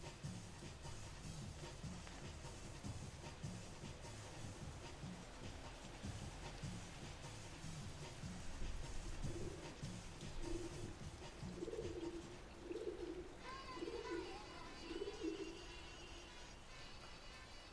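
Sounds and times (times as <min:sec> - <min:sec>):
steady low rumble under a bridge beside a canal: 0:00.0 - 0:13.4
faint music with brighter held tones: 0:00.0 - 0:17.7
pigeons cooing: 0:00.0 - 0:17.7.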